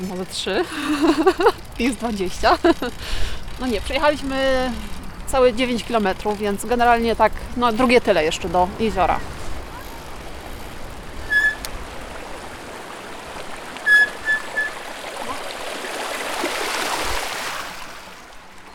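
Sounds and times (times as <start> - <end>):
speech: 0.0 - 9.4
water rushing and splashing while riding through a shallow stream: 0.0 - 18.7
laughter: 0.6 - 1.7
short high-pitched squeaks: 9.7 - 11.7, 13.8 - 14.8.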